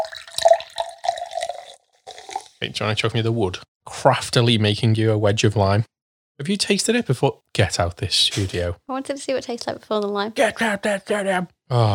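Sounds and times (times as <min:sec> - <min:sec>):
soda water poured into a glass to top up a drink: 0:00.0 - 0:02.6
speech: 0:02.6 - 0:11.9.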